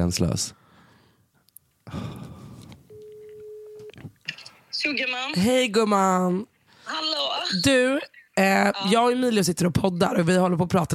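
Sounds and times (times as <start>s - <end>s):
speech: 0.0s - 0.6s, 4.8s - 10.9s
telephone ringback tone while a call is placed: 2.9s - 3.9s.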